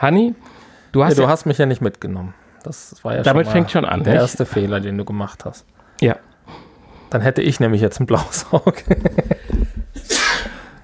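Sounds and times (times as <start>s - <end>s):
speech: 0.0s - 10.1s
laughter: 8.2s - 10.1s
person sneezing: 10.0s - 10.8s.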